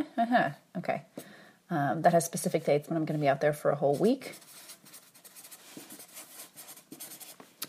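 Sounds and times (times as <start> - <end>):
speech: 0.1 - 4.6
pen scratching on paper writing dates: 4.0 - 7.5.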